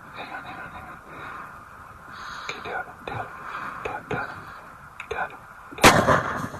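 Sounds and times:
quiet whispering: 0.0s - 5.8s
gunshot while hunting over a decoy: 5.8s - 6.5s.

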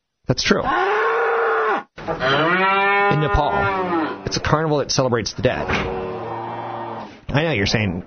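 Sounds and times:
speech: 0.3s - 1.0s, 2.1s - 6.0s, 7.3s - 8.0s
cow mooing loudly: 0.7s - 4.4s, 5.5s - 7.2s.

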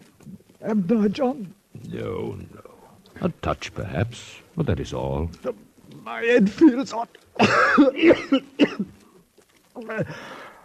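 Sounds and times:
speech: 0.6s - 2.6s, 3.2s - 9.0s, 9.8s - 10.4s
hoarse rough coughing: 7.4s - 9.0s.

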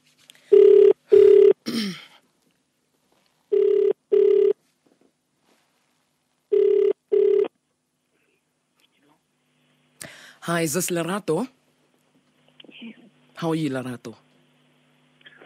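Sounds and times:
outgoing-call ringback tone in a double-pulse pattern: 0.5s - 1.6s, 3.5s - 4.6s, 6.5s - 7.5s
speech: 10.5s - 11.6s, 13.4s - 14.3s.

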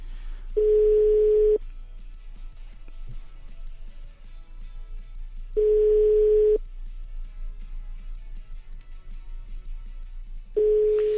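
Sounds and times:
faint low hum: 0.0s - 11.1s
telephone ringback tone on an outgoing call: 0.6s - 1.6s, 5.6s - 6.6s, 10.6s - 11.1s.

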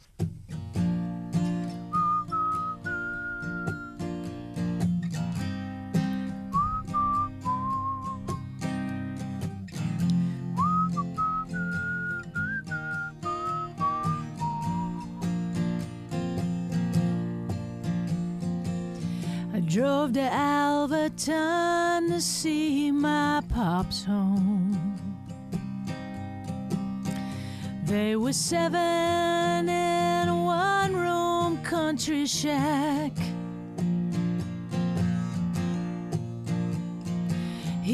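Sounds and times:
strummed instrumental music: 0.0s - 37.9s
person whistling a melody: 1.9s - 4.0s, 6.5s - 8.5s, 10.5s - 15.4s
speech: 19.8s - 24.6s, 27.9s - 33.3s.

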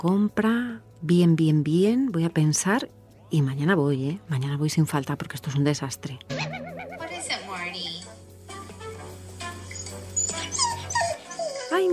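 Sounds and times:
speech: 0.0s - 6.7s
puppies yelping sharply: 6.3s - 7.2s, 9.7s - 11.9s
puppies whimpering and yipping: 9.7s - 11.9s.

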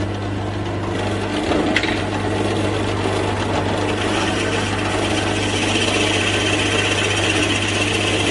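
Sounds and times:
drill press boring into tambotie wood: 0.0s - 8.3s.

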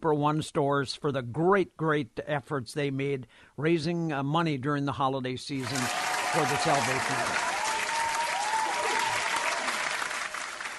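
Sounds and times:
speech: 0.0s - 7.6s
studio audience applause: 5.6s - 10.7s.

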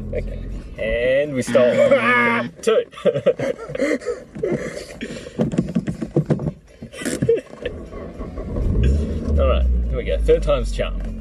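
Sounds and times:
speech: 0.1s - 5.5s, 10.0s - 11.1s
laughter: 1.4s - 5.2s
car starter cranking after stalling in reverse: 6.9s - 11.1s.

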